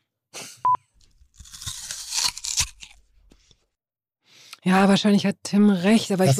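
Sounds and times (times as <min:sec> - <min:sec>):
person biting crunchily into an apple: 0:01.0 - 0:03.6
speech: 0:04.6 - 0:06.3.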